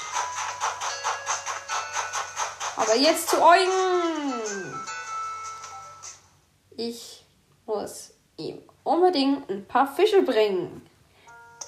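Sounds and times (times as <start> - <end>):
small toy train running: 0.0 - 5.8
speech: 2.8 - 4.6, 6.8 - 10.9.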